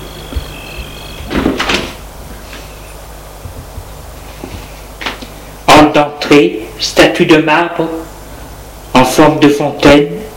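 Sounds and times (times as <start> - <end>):
faint insect-like chirping: 0.0 - 1.5
door swinging shut with a sliding scrape and soft thud: 0.3 - 2.0
speech: 6.0 - 8.1, 9.1 - 10.2.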